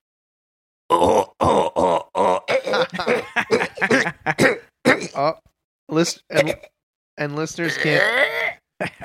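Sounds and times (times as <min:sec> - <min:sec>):
speech: 0:00.9 - 0:01.3, 0:05.2 - 0:09.0
voice imitating someone being choked with strained throaty grunts: 0:00.9 - 0:05.4, 0:06.3 - 0:06.7, 0:07.6 - 0:08.7.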